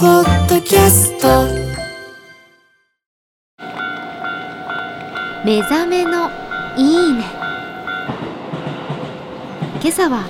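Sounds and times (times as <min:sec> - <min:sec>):
speech: 0:00.0 - 0:01.6, 0:05.4 - 0:07.4, 0:09.8 - 0:10.2
passing train rumbling and clattering in front of Keisei Tateishi Station in Japan: 0:03.6 - 0:10.2.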